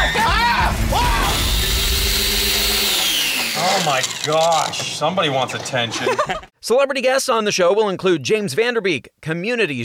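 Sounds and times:
person performing a theatrical horror-movie-style scream: 0.0 - 2.5
speech: 3.8 - 9.8
laughter: 5.8 - 6.6.

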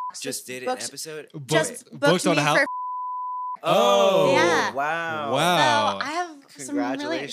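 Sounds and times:
speech: 0.1 - 2.7, 3.6 - 7.3
steady mid-pitched censor bleep tone: 2.6 - 3.6.

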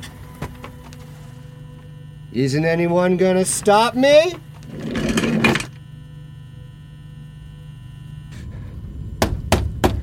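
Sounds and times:
speech: 2.3 - 4.8
office chair casters rolling across a hard floor: 4.6 - 5.7.

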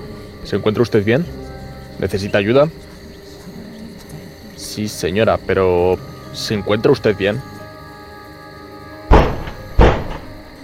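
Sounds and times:
speech: 0.4 - 2.9, 4.7 - 7.5
heavy booming knocks on a door: 9.1 - 10.3.

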